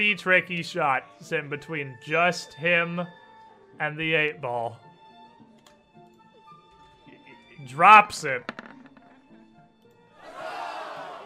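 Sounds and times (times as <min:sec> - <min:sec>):
speech: 0:00.0 - 0:03.2, 0:03.8 - 0:04.8, 0:07.6 - 0:08.6
small group of friends cheering and whooping: 0:10.2 - 0:11.2.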